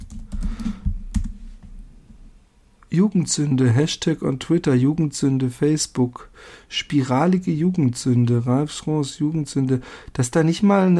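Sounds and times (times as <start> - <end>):
fingers typing on a computer keyboard: 0.0 - 1.4
speech: 2.9 - 10.9.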